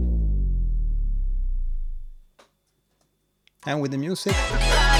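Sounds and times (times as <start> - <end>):
soft sine-wave pitch-down transition effect: 0.0 - 2.3
speech: 3.6 - 4.9.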